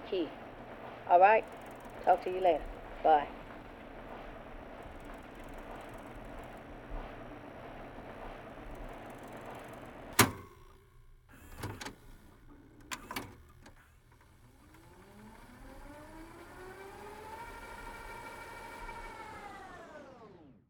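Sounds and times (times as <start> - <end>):
cassette tape hissing: 0.0 - 20.0
speech: 0.1 - 0.4, 1.1 - 3.4
sharp mechanical clicks of a cassette tape: 0.4 - 17.4.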